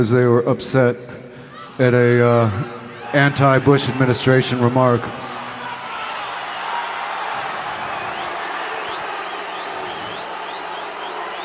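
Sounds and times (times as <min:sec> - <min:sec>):
speech: 0:00.0 - 0:01.2, 0:01.8 - 0:05.2
large audience booing: 0:02.2 - 0:11.4
sharp whistles from crowd: 0:08.0 - 0:11.4.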